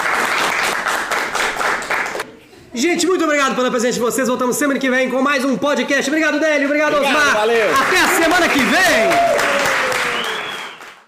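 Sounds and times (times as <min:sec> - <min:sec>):
audience applauding: 0:00.0 - 0:02.3, 0:07.6 - 0:11.0
speech: 0:02.8 - 0:09.5.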